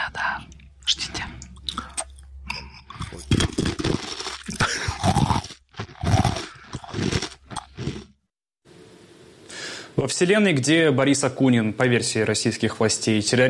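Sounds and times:
dry sushka bread ring bitten and chewed by a woman: 3.0s - 8.1s
speech: 10.0s - 13.4s.

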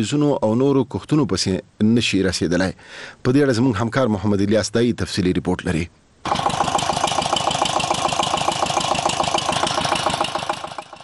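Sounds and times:
speech: 0.0s - 6.4s
water pump engine drawing water from dug wells to irrigate melon fields: 6.3s - 11.0s.

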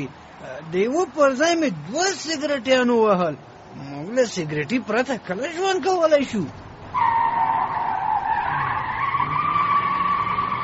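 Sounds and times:
speech: 0.0s - 7.1s
tyres skidding on a fast-driven car: 6.9s - 10.6s.

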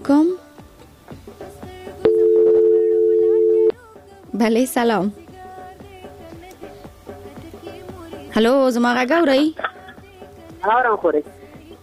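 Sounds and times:
speech: 0.1s - 0.4s, 4.4s - 5.2s, 8.4s - 9.7s, 10.6s - 11.4s
telephone line tone as a call connects: 2.1s - 3.7s.

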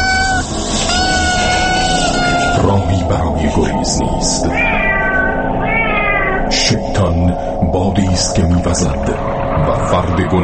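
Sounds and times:
kitten meowing: 0.0s - 2.6s, 4.5s - 6.4s
speech: 3.1s - 4.9s, 6.7s - 10.4s.

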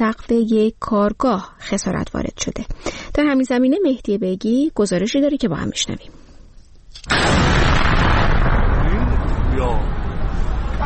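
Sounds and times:
speech: 0.0s - 6.2s, 7.0s - 7.8s
explosion from a drone attack at night in a city: 7.0s - 10.8s.

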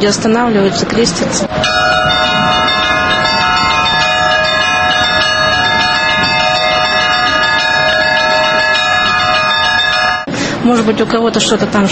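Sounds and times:
speech: 0.0s - 2.3s, 10.7s - 11.8s
church bells ringing: 1.5s - 10.6s.

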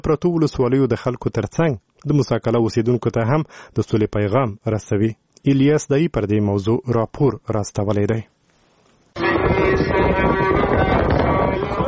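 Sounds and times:
speech: 0.0s - 8.3s
strong wind blowing with dust: 9.2s - 11.8s.

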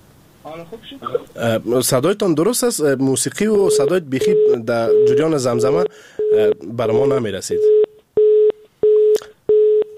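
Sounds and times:
speech: 0.4s - 7.8s
telephone busy tone after a phone call disconnects: 3.7s - 6.5s, 7.6s - 9.9s.

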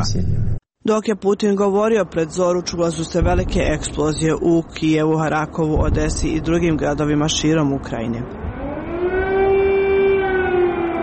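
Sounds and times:
speech: 0.0s - 8.4s
air raid siren wailing in Kyiv: 8.3s - 11.0s.

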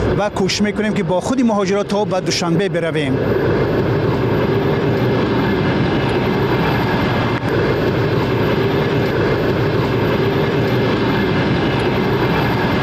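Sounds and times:
passenger train rumbling along the rails: 0.0s - 12.8s
speech: 0.2s - 3.9s.

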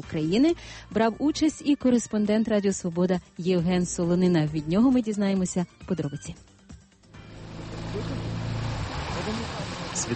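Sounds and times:
speech: 0.0s - 6.5s, 10.0s - 10.1s
boat engine rumbling on the water: 7.1s - 10.1s.

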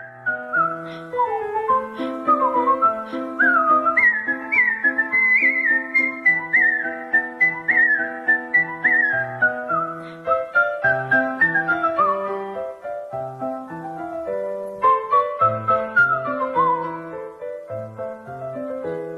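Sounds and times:
person whistling a fast classical piano sonata melody: 0.0s - 12.4s, 14.8s - 17.0s
lower musical accompaniment: 0.0s - 19.1s.

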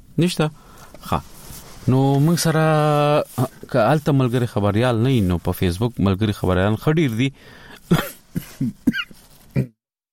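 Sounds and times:
speech: 0.2s - 9.0s
person coughing in short harsh bursts: 7.9s - 9.8s.

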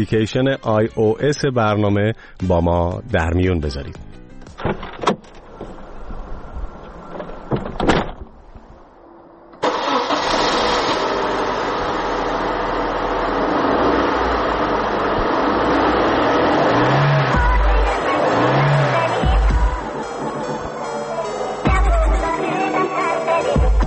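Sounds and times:
speech: 0.0s - 5.0s
clicks and clunks: 3.9s - 5.8s, 6.8s - 8.7s
small Pride car engine starting and revving: 9.5s - 23.8s.

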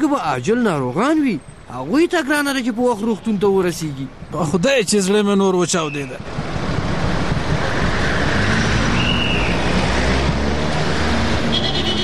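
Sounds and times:
speech: 0.0s - 6.5s
cars driving past in road traffic at a signal: 6.2s - 12.0s.

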